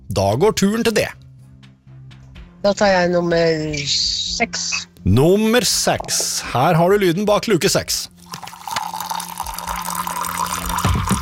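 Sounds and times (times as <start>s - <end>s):
speech: 0.1s - 1.2s, 2.6s - 8.1s
tea pouring into a cup: 8.1s - 11.2s.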